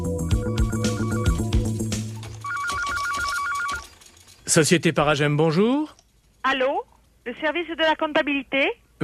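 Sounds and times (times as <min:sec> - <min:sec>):
office telephone ringing with a warbling electronic tone: 0:00.2 - 0:04.6
speech: 0:04.5 - 0:09.0.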